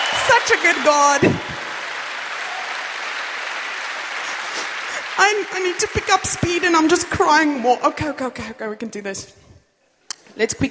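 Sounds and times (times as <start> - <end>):
crowd applauding: 0.0 - 7.5
speech: 0.3 - 1.5, 5.2 - 9.5, 10.4 - 10.6.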